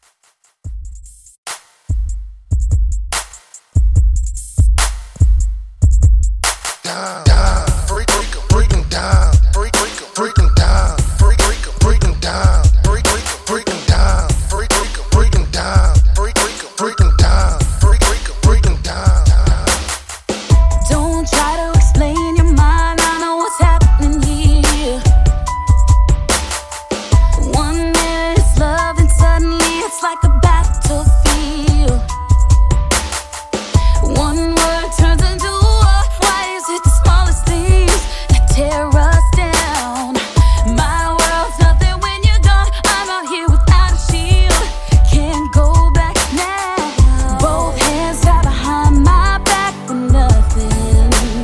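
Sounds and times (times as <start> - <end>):
R&B teen pop drum beat: 0.0 - 51.4.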